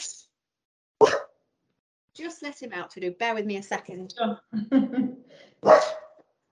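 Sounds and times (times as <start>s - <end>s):
dog barking: 1.0s - 1.2s, 5.6s - 6.2s
speech: 2.2s - 6.0s.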